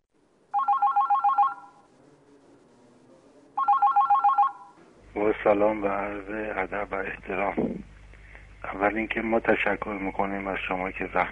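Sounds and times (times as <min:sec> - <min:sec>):
telephone ringing with a warbling electronic trill: 0:00.5 - 0:01.9, 0:03.6 - 0:04.8
speech: 0:05.4 - 0:07.9, 0:08.7 - 0:11.2.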